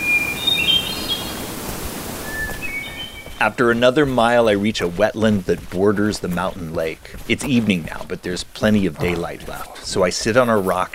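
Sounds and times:
forest birdsong on a sunny evening: 0:00.0 - 0:01.6, 0:02.2 - 0:04.9
hiss of wind or leaves: 0:00.0 - 0:03.3
speech: 0:03.4 - 0:10.9.

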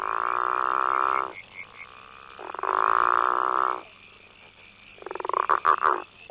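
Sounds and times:
male frogs calling in buzzy trills: 0:00.0 - 0:06.2
steady hum of insects: 0:00.0 - 0:06.2.

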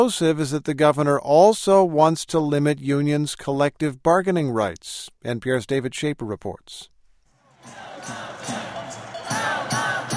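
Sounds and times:
speech: 0:00.0 - 0:06.9
dense crowd of thousands of protesters chanting in a state Capitol Rotunda: 0:07.5 - 0:10.1
rhythmic thumping by protesters: 0:07.6 - 0:10.1.

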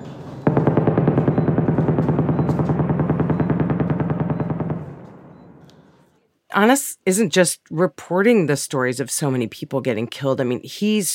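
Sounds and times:
rapid automatic gunfire during intense shelling in southern Gaza: 0:00.4 - 0:05.5
speech: 0:06.6 - 0:11.1.

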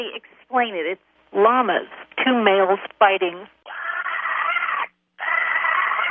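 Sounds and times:
speech: 0:00.0 - 0:03.6
mother pig squealing grunts: 0:03.7 - 0:06.1.

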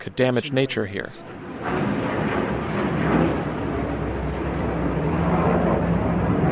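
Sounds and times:
speech: 0:00.0 - 0:01.8
F-15 Eagle fighter jet taking off from Kadena Air Force Base in Okinawa: 0:00.0 - 0:06.5.

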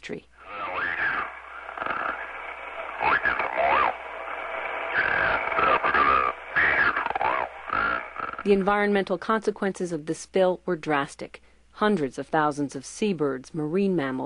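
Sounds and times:
speech: 0:00.0 - 0:00.3, 0:08.4 - 0:14.2
garbled radio call from an oil tanker captain: 0:00.4 - 0:08.7.

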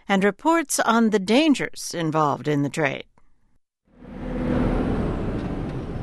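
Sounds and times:
speech: 0:00.1 - 0:03.1
heavy truck traffic on a highway on the outskirts of Karachi Pakistan: 0:03.9 - 0:06.0.

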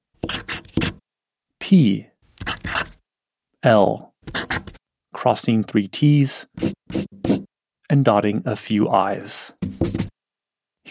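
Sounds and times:
pen or marker strokes writing a capital letter A on a hard surface: 0:00.2 - 0:01.0, 0:02.4 - 0:03.0, 0:04.3 - 0:04.8, 0:06.6 - 0:07.5, 0:09.6 - 0:10.1
speech: 0:01.7 - 0:02.1, 0:03.6 - 0:04.4, 0:05.2 - 0:07.3, 0:07.9 - 0:09.8.

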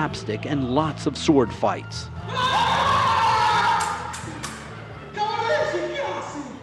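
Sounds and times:
speech: 0:00.0 - 0:02.7
enthusiastic theater audience with young children cheering under a big top in Argentina: 0:02.2 - 0:06.6.

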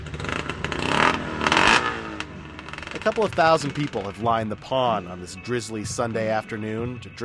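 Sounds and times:
snowmobile engine starting and revving after water is drained at a drizzly outdoor pond event: 0:00.0 - 0:04.6
speech: 0:03.0 - 0:07.2.

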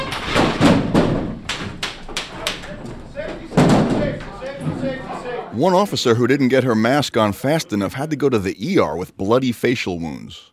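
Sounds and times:
air horn blasts and door breach bangs and thuds: 0:00.0 - 0:02.2, 0:03.4 - 0:04.9
speech: 0:05.6 - 0:10.5.

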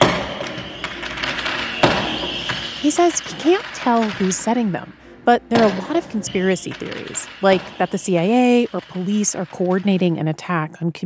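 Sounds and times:
fireworks booming outside a kitchen window: 0:00.0 - 0:10.1
speech: 0:02.8 - 0:11.0.

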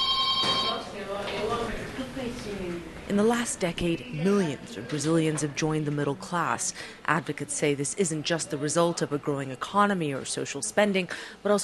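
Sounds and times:
telephone ringing with a shrill electronic tone in a crowded union office waiting room: 0:00.0 - 0:00.9
speech: 0:02.1 - 0:11.6.

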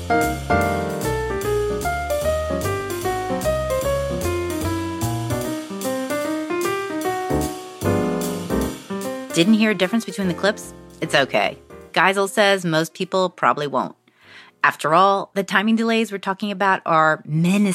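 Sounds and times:
steady loud bass-and-drums swing rhythm section: 0:00.0 - 0:11.9
jazz piano solo with downbeats slightly behind the rhythm section: 0:00.0 - 0:12.0
speech: 0:00.1 - 0:00.6, 0:09.4 - 0:14.0, 0:14.6 - 0:17.7.

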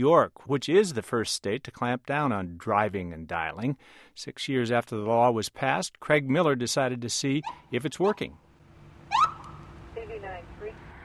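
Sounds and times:
speech: 0:00.0 - 0:08.4
low steady noise: 0:00.0 - 0:11.0
traffic enforcement vehicle siren warbling bursts: 0:09.0 - 0:10.1
traffic enforcement vehicle siren whoop: 0:09.1 - 0:09.7.

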